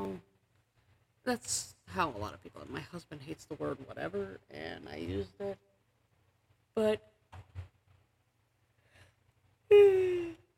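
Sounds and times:
speech: 1.3s - 5.7s, 6.8s - 7.6s, 9.7s - 10.2s
tired person yawning: 9.7s - 10.5s.

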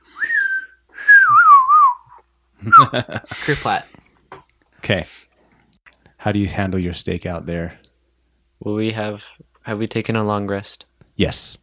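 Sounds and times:
person whistling: 0.1s - 3.0s
speech: 2.6s - 4.0s, 4.8s - 5.3s, 6.2s - 7.8s, 8.6s - 11.6s.

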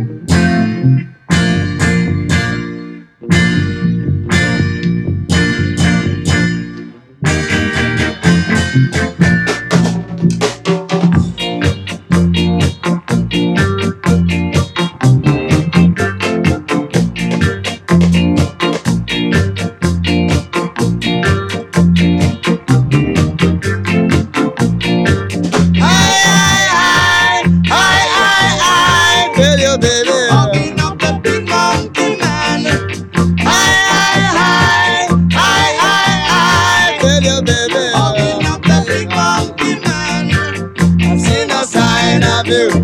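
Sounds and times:
loud full-band song with punchy beat and brass-like stabs: 0.0s - 42.8s
lead singer's voice: 25.8s - 42.8s.

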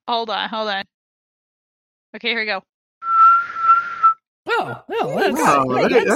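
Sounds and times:
speech: 0.1s - 0.9s, 2.1s - 2.7s, 4.6s - 6.1s
person whistling a steady high note: 3.0s - 4.2s
lively voices: 4.5s - 6.1s
laughter: 4.6s - 6.1s.

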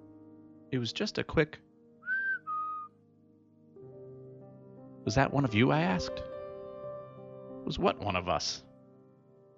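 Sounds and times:
speech: 0.7s - 1.7s, 5.1s - 6.3s, 7.6s - 8.7s
person whistling two quick notes: 2.0s - 2.9s.

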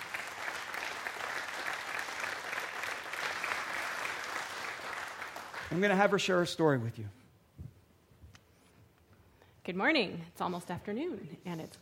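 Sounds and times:
room full of people applauding: 0.0s - 6.2s
speech: 5.7s - 7.2s, 9.7s - 11.8s.

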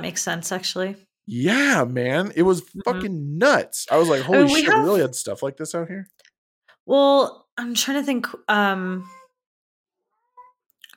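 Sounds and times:
speech: 0.0s - 6.2s, 6.9s - 9.2s
laughter: 1.4s - 5.3s
cat meowing: 4.0s - 5.0s.

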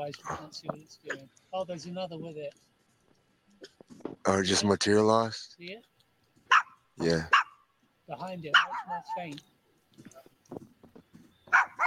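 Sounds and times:
speech: 0.0s - 2.7s, 3.6s - 5.9s, 7.0s - 7.4s, 8.1s - 10.7s
dog barking excitedly: 0.2s - 0.5s, 6.5s - 7.6s, 8.5s - 9.3s, 11.5s - 11.8s.

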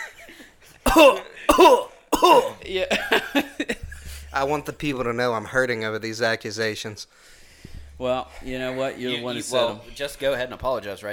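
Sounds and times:
harsh coughs into the microphone: 0.9s - 3.4s
speech: 1.0s - 7.4s, 8.0s - 11.1s.

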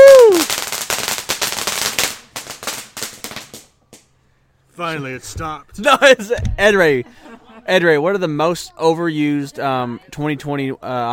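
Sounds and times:
string of firecrackers popping: 0.0s - 4.1s
speech: 4.8s - 11.1s
laughter: 5.8s - 8.0s.

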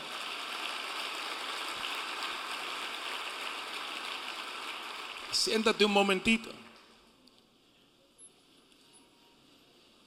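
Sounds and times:
audience applauding: 0.0s - 6.3s
speech: 5.3s - 6.6s.

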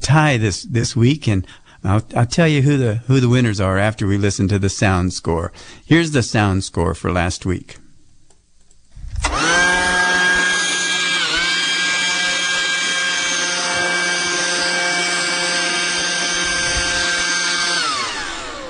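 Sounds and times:
speech: 0.1s - 7.8s
leaf blower clearing sawdust after sandpaper sanding: 9.2s - 18.6s.

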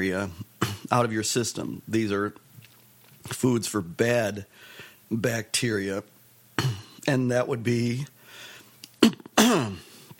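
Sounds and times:
speech: 0.0s - 2.5s, 3.2s - 8.1s, 9.0s - 9.9s
phlegmy throat clearing: 0.6s - 1.0s, 6.6s - 7.1s, 9.0s - 10.0s.

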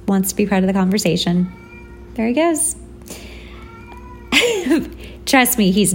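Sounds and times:
speech: 0.1s - 1.6s, 2.2s - 3.2s, 4.5s - 5.9s
cat meowing: 1.4s - 2.2s, 3.5s - 4.4s.

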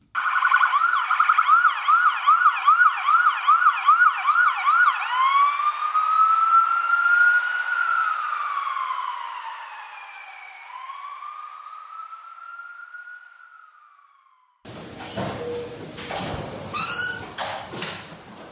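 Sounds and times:
ambulance siren: 0.1s - 14.7s.

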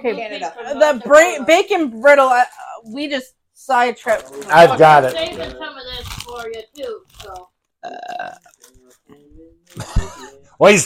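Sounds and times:
speech: 0.0s - 8.5s, 9.7s - 10.8s
loud drawn-out burp: 7.8s - 8.6s.

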